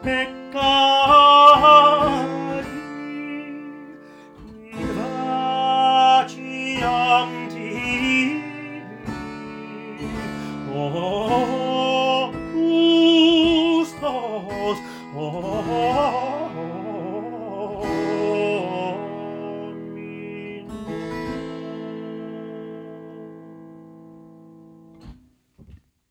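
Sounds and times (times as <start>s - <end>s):
solo voice singing trills and coloratura: 0.0s - 23.4s.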